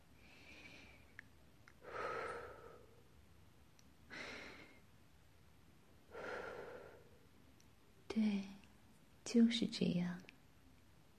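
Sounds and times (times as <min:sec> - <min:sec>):
deep breathing in and out: 0:01.8 - 0:03.1, 0:04.1 - 0:04.9, 0:06.1 - 0:07.2
speech: 0:08.2 - 0:08.6, 0:09.3 - 0:10.3.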